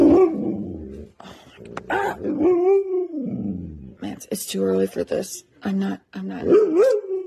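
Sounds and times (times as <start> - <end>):
pet dog barking and growling: 0.0 - 4.0, 6.3 - 7.2
speech: 1.9 - 2.8, 4.2 - 7.0.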